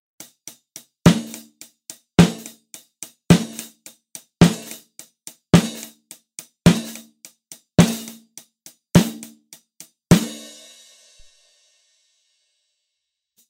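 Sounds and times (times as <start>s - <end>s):
snare drum recorded with Electrovoice RE20 microphone: 0.2s - 10.6s.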